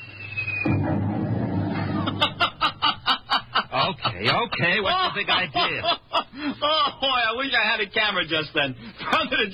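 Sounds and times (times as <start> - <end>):
noisemaker gadget falling whistle: 0.0 - 1.1
noisemaker gadget loud rumbling burst in a wastebasket: 0.6 - 3.2
laughter: 1.8 - 7.2
speech: 4.2 - 9.5.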